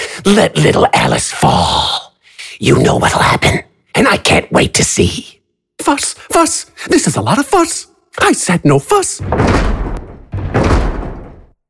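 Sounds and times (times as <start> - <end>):
speech: 0.2 - 2.0, 2.6 - 10.5
heavy hammer pounding on large wooden double doors: 9.2 - 11.6.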